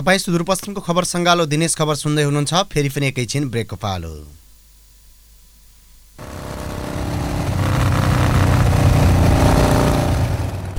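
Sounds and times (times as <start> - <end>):
speech: 0.0 - 4.4
new motorbike engine starting and rumbling: 4.4 - 10.7.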